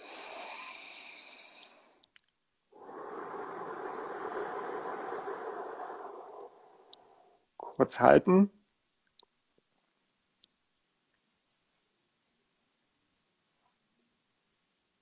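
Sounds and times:
long deep breath drawn in during a guided breathing exercise: 0:00.0 - 0:02.0, 0:02.8 - 0:07.8
speech: 0:07.8 - 0:08.6.

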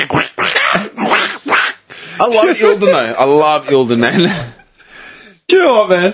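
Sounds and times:
person imitating a duck with raspy quacks: 0:00.0 - 0:01.9
speech: 0:02.2 - 0:04.5, 0:05.5 - 0:06.1.

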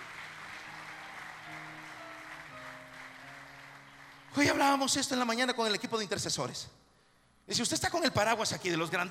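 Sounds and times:
audience clapping in praise: 0:00.0 - 0:05.6
speech: 0:04.3 - 0:06.8, 0:07.5 - 0:09.0.

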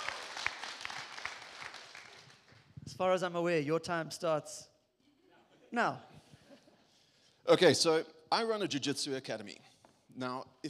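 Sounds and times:
small crowd applauding in a room: 0:00.0 - 0:02.7
speech: 0:03.0 - 0:04.7, 0:05.7 - 0:06.2, 0:07.5 - 0:10.6.

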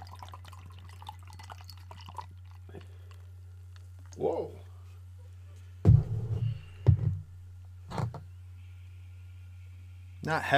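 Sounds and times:
porter beer being poured into a glass: 0:00.0 - 0:03.3
steady low electrical hum: 0:00.0 - 0:10.5
speech: 0:04.2 - 0:04.6, 0:10.3 - 0:10.5.

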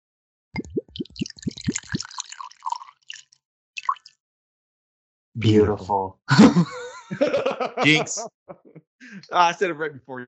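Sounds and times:
bourbon glugging from a bottle into a glass: 0:00.6 - 0:04.2
speech: 0:05.4 - 0:10.2
laughter: 0:06.3 - 0:10.2.

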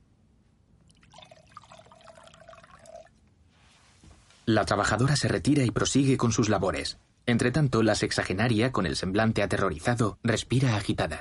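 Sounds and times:
wine poured from a bottle into a glass: 0:00.8 - 0:03.2
speech: 0:04.5 - 0:11.1.

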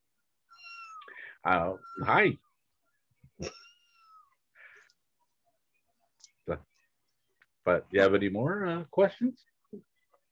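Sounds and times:
cat meowing: 0:00.5 - 0:02.3, 0:03.5 - 0:04.3
speech: 0:01.4 - 0:02.5, 0:03.4 - 0:03.6, 0:06.5 - 0:06.7, 0:07.7 - 0:09.9.

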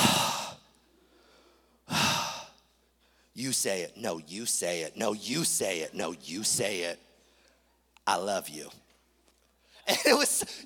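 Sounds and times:
person imitating heavy breathing into a phone: 0:01.9 - 0:02.6
speech: 0:03.4 - 0:07.0, 0:08.0 - 0:08.8, 0:09.8 - 0:10.6.

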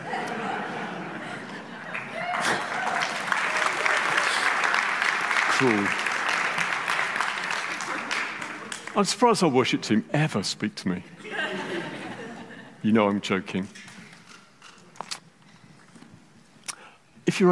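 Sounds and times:
laughter: 0:00.0 - 0:04.4, 0:11.2 - 0:12.8
crowd applauding at a church service: 0:01.4 - 0:09.4
speech: 0:05.6 - 0:06.0, 0:09.0 - 0:11.2, 0:12.8 - 0:13.9.

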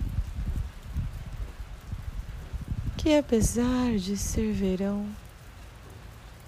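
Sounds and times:
steady summer rain falling: 0:00.0 - 0:06.4
speech: 0:03.0 - 0:05.2.

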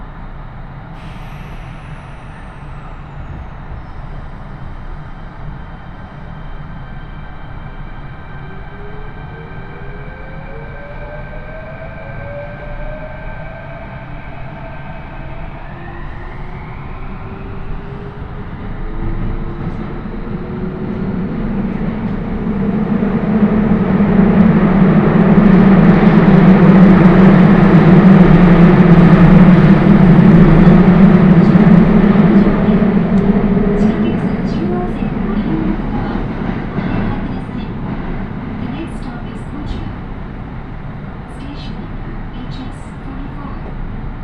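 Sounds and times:
train rumbling along on a railway journey: 0:00.0 - 0:44.2.

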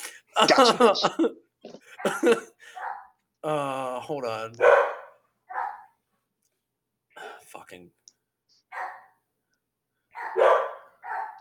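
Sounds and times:
laughter: 0:00.0 - 0:02.8
speech: 0:00.4 - 0:02.8, 0:03.4 - 0:04.9, 0:07.5 - 0:08.0
dog barking: 0:02.0 - 0:03.1, 0:04.6 - 0:06.0, 0:08.7 - 0:09.2, 0:10.1 - 0:11.4.

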